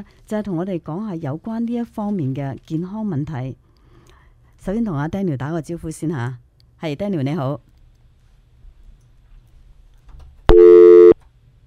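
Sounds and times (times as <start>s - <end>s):
speech: 0.0s - 3.6s, 4.6s - 7.7s
steady electronic telephone busy tone: 10.5s - 11.2s.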